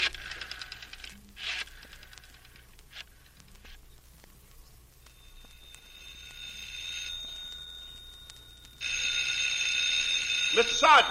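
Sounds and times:
steady high tone: 0:05.0 - 0:11.0
telephone bell ringing in metallic jangling bursts: 0:05.1 - 0:11.0
speech: 0:10.9 - 0:11.0.

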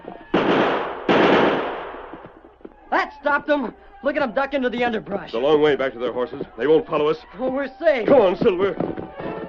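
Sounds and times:
gunshots fired at pursuers: 0:00.3 - 0:02.4
speech: 0:03.1 - 0:09.4.

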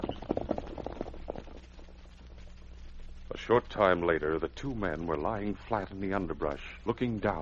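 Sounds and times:
horse hooves clip-clopping: 0:00.0 - 0:05.3
speech: 0:03.5 - 0:07.4.

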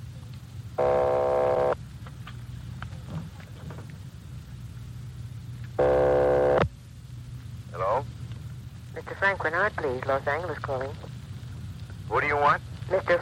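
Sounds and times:
steady hiss and low rumble of telephone line noise: 0:00.0 - 0:13.1
telephone line ring tone through the earpiece: 0:00.8 - 0:01.8, 0:05.8 - 0:06.6.

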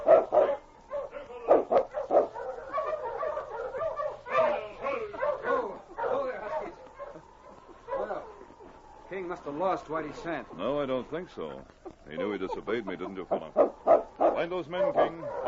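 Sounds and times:
pack of sled dogs barking excitedly: 0:00.0 - 0:15.4
speech: 0:09.5 - 0:15.4.

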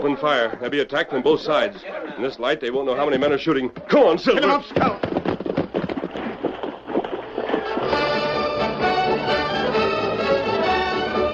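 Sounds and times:
speech: 0:00.0 - 0:05.1
two horses plunging into water and swimming down a river: 0:03.2 - 0:10.6
loud orchestral music: 0:07.9 - 0:11.3.

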